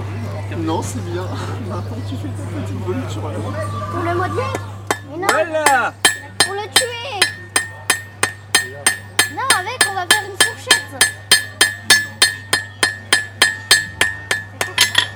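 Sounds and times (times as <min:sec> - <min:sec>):
speech: 0:00.5 - 0:06.1
hammer striking an anvil damped by lead: 0:04.9 - 0:15.1.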